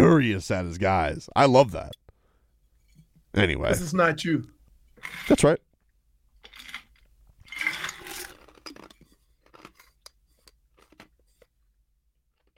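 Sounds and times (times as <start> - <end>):
speech: 0.2 - 2.0, 3.4 - 5.7
ice cubes being bitten and chewed into the microphone: 6.4 - 11.2.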